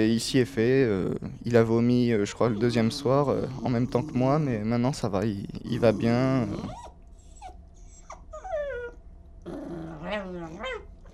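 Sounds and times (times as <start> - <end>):
speech: 0.0 - 6.8
low steady hum: 0.0 - 11.1
dog on a boat at sea growling: 2.2 - 10.9
dog on a boat at sea whining and yipping: 6.4 - 11.0.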